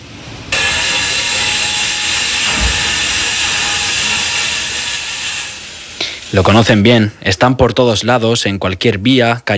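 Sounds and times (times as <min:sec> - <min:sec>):
construction machine hissing roar in city streets in summer: 0:00.0 - 0:07.2
speech: 0:06.3 - 0:09.5.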